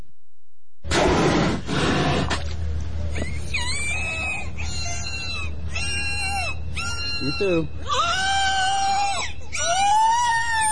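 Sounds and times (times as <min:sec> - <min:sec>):
low steady rumble: 0:00.8 - 0:10.6
captive killer whales calling at a marine park in Florida: 0:03.4 - 0:10.6
speech: 0:07.3 - 0:08.0.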